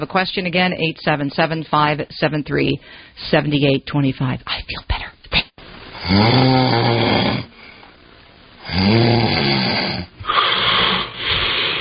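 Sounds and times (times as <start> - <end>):
speech: 0.0 - 5.1, 6.1 - 7.5, 8.7 - 10.1
choppy uneven breathing: 2.8 - 3.2, 7.5 - 8.0, 9.8 - 11.7
person snoring loudly in harsh rasping breaths: 6.0 - 7.8, 8.6 - 11.7.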